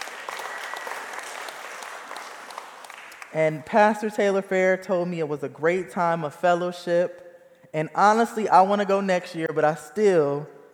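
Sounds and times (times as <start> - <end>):
crowd applause for a camping trip: 0.0 - 3.3
speech: 3.3 - 10.6.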